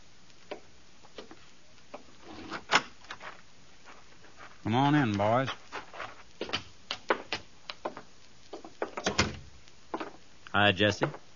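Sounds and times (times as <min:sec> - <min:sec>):
speech: 0:04.7 - 0:05.6, 0:10.6 - 0:11.2
door opening: 0:08.9 - 0:09.5.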